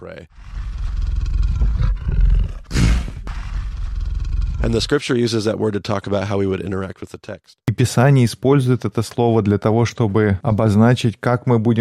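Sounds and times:
speech: 0.0 - 1.0, 4.6 - 11.7
lion growling low over its prey: 0.2 - 5.0.

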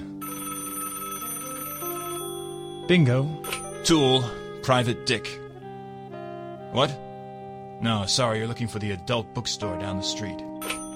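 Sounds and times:
telephone ringing with a metallic bell: 0.0 - 4.7, 10.5 - 10.9
speech: 2.9 - 5.4, 6.7 - 7.0, 7.8 - 10.5.

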